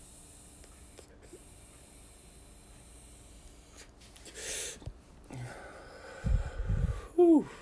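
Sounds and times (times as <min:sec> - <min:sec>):
drawing air from a vape cartridge on a battery: 0:03.6 - 0:07.1
long hissing exhale: 0:03.7 - 0:07.6
speech: 0:07.2 - 0:07.6.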